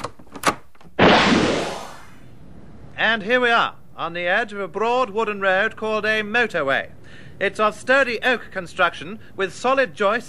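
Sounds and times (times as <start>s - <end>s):
door swinging open with a broad whooshing rush: 1.0s - 2.3s
speech: 3.0s - 10.2s.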